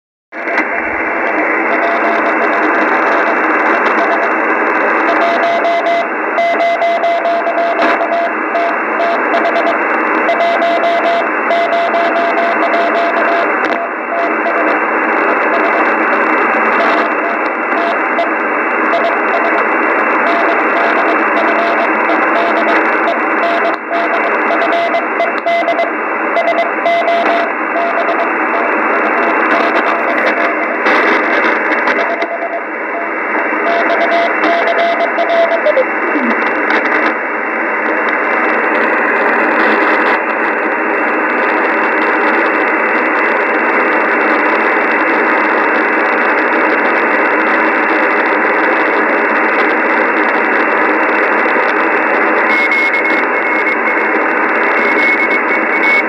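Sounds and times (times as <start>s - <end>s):
noise: 0.3s - 56.0s
morse code beeps: 0.4s - 4.4s, 5.0s - 14.8s, 16.7s - 18.3s, 18.9s - 19.6s, 20.2s - 36.9s, 52.4s - 56.0s.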